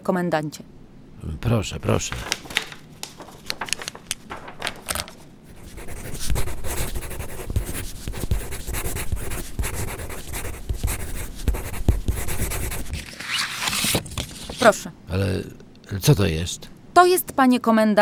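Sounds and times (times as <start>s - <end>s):
speech: 0.0s - 2.5s, 14.6s - 18.0s
paper rustling: 1.4s - 14.9s
pen writing on paper: 5.5s - 13.0s.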